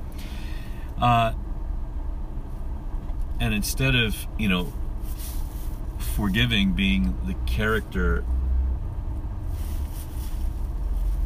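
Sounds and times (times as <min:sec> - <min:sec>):
car traffic rumble in a traffic jam: 0:00.0 - 0:11.2
speech: 0:01.0 - 0:01.4, 0:03.4 - 0:04.8, 0:06.2 - 0:08.3.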